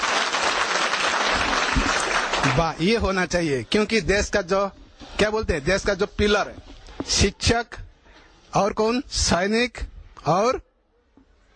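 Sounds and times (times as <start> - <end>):
crowd applause for teachers: 0.0 - 2.8
speech: 2.6 - 7.8, 8.5 - 10.7.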